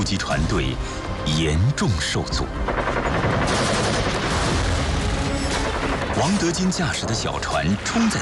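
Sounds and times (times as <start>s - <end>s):
speech: 0.0s - 3.7s, 6.2s - 8.1s
machine guns in a bunker firing at a river-crossing assault at night: 2.6s - 6.6s.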